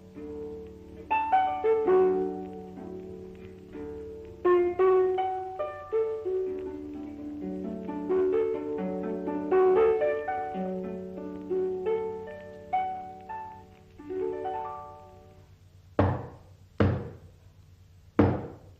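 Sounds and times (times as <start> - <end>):
melodic music: 0.0 - 15.4
loud sharp knocking on a door: 16.0 - 17.3, 18.2 - 18.7.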